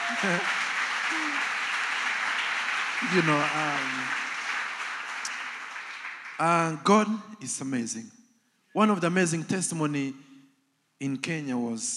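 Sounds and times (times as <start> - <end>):
audience clapping: 0.0 - 7.0
speech: 0.1 - 1.6, 3.0 - 4.2, 6.4 - 8.2, 8.8 - 10.3, 11.0 - 11.9.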